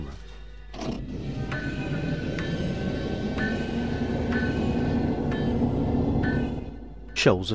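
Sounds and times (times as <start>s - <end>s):
rhythmic clanking ping: 0.4s - 7.5s
water pumps running: 0.7s - 6.7s
speech: 7.2s - 7.5s.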